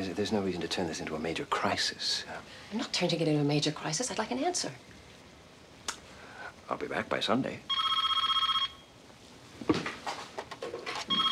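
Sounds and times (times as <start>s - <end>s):
speech: 0.2s - 5.0s, 6.7s - 7.8s
telephone ringing with electronic bell: 7.7s - 8.9s, 11.0s - 11.3s
rustling and faint movement: 9.3s - 11.3s.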